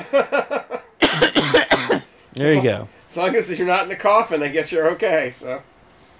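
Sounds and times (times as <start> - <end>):
speech: 0.0 - 0.6, 2.4 - 5.7
person coughing in a hacking fit: 1.0 - 2.1.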